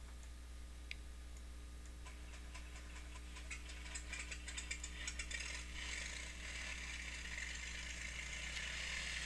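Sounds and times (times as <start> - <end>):
constant low hum: 0.0 - 9.2
small aircraft engine starting up: 2.9 - 9.2.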